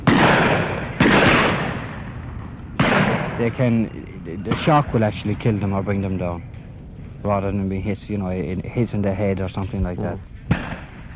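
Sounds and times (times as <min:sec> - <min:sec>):
shotgun blasts at a pheasant shoot: 0:00.0 - 0:02.2, 0:02.8 - 0:03.7, 0:10.5 - 0:11.1
speech: 0:03.4 - 0:06.5, 0:07.2 - 0:10.3.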